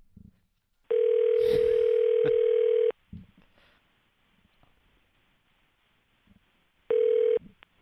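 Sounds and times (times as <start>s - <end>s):
telephone ringback tone on an outgoing call: 0.9s - 2.9s, 6.9s - 7.4s.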